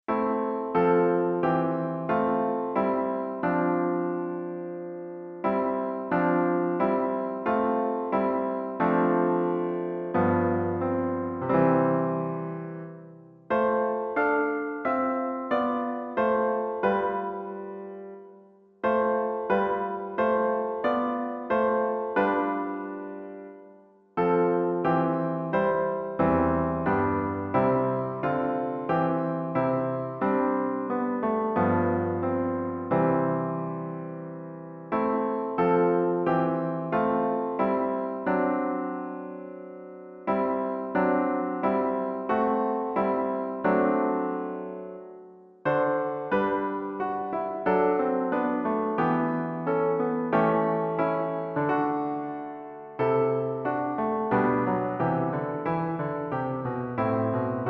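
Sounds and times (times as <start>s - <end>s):
baroque suite in C major for piano: 0.0s - 57.6s.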